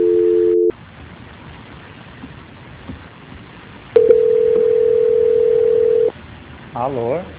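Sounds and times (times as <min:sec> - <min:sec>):
telephone tones during a call transfer: 0:00.0 - 0:00.7, 0:04.0 - 0:06.1.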